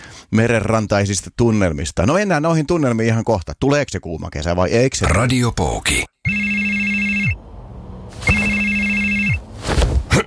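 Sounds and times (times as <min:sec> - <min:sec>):
speech: 0:00.3 - 0:06.9
electronic telephone ringing: 0:06.3 - 0:07.4, 0:08.2 - 0:09.4.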